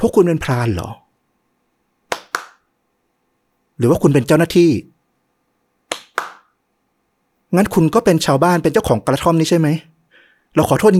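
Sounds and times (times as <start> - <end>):
speech: 0.0 - 1.0, 3.8 - 4.9, 7.5 - 9.9, 10.5 - 10.9
sharp crisp hand claps: 2.1 - 2.7, 5.9 - 6.6.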